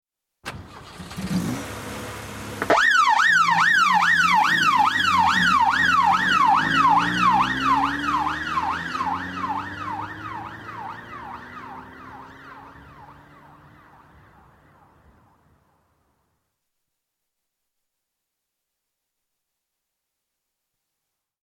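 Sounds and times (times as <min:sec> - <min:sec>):
police car starting and departing: 0:00.4 - 0:15.4
police car yelp siren: 0:02.7 - 0:15.5.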